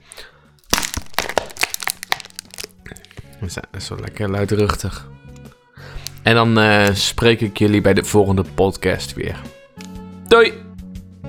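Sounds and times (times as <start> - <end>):
small plastic bottle being crushed: 0.6 - 3.4, 6.0 - 7.3
speech: 2.9 - 5.2, 6.3 - 9.6, 10.3 - 10.6.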